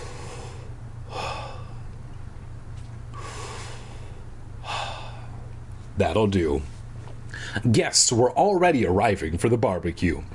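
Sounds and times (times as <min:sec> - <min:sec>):
person taking deep breaths: 0:00.0 - 0:01.9, 0:03.1 - 0:05.5, 0:07.3 - 0:07.6
steady low hum: 0:00.0 - 0:10.3
speech: 0:06.0 - 0:06.7, 0:07.6 - 0:10.3.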